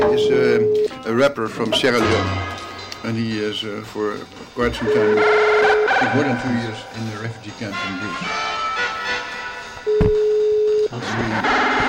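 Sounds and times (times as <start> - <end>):
electronic ringing tone from an outgoing phone call: 0.0 - 0.9, 4.8 - 6.6, 9.9 - 10.9
speech: 0.0 - 8.6, 10.9 - 11.8.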